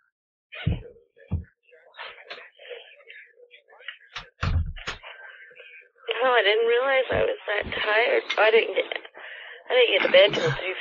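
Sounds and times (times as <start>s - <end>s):
faint murmured voices: 0.5s - 10.7s
door being shut: 4.2s - 5.0s
speech: 6.2s - 9.0s, 9.7s - 10.7s.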